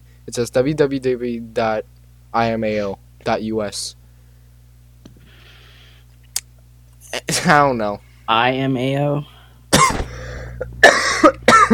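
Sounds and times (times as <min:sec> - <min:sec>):
speech: 0:00.2 - 0:04.0, 0:07.1 - 0:09.3, 0:11.2 - 0:11.7
person coughing harshly: 0:09.7 - 0:11.7.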